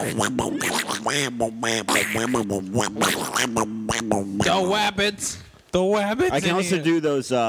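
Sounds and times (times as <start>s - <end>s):
raspy garbled cartoon duck voice impression: 0.0s - 5.0s
speech: 0.0s - 7.4s.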